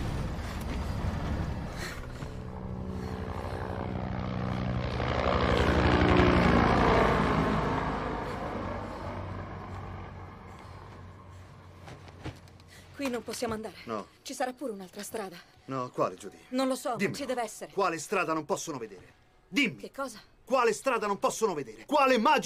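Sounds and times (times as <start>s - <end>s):
approaching helicopter rotor and engine drone: 0.0s - 13.9s
speech: 13.0s - 22.4s.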